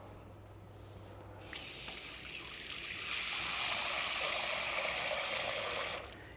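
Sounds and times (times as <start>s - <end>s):
water pouring into a cooking pot: 2.5s - 6.2s.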